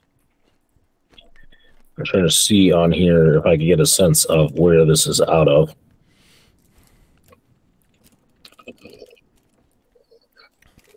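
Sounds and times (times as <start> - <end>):
crunchy chewing of a chocolate candy bar with marshmallow: 0.0 - 2.0, 6.5 - 10.9
speech: 2.0 - 5.9.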